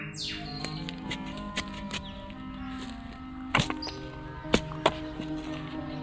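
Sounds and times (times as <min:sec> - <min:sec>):
faint birdsong: 0:00.0 - 0:06.0
outdoor ambience: 0:00.0 - 0:06.0
spade digging a hole in garden soil: 0:00.4 - 0:06.0.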